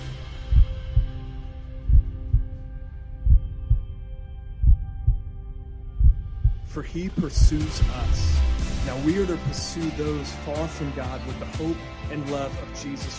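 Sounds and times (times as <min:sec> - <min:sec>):
deep thudding heartbeat: 0:00.0 - 0:09.8
soft sustained musical drone: 0:00.0 - 0:13.1
speech: 0:06.8 - 0:13.1.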